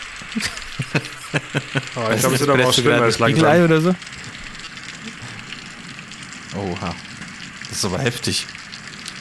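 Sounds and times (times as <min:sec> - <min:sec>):
steady rain falling: 0:00.0 - 0:09.1
laughter: 0:00.8 - 0:03.6
speech: 0:01.7 - 0:04.2, 0:06.6 - 0:07.1, 0:07.8 - 0:08.6.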